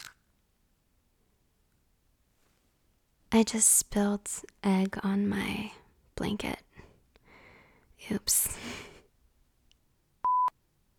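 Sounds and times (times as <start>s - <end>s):
speech: 3.4s - 6.7s, 8.0s - 8.9s
loud electronic phone keypad beep: 10.3s - 10.5s.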